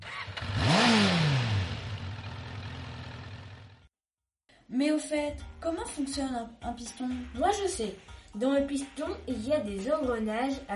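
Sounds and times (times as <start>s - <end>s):
small scooter engine revving then sputtering out: 0.0s - 3.9s
speech: 4.8s - 10.7s.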